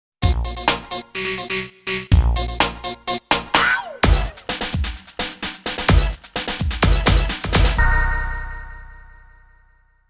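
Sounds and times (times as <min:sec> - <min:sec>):
techno hip hop music: 0:00.2 - 0:08.0.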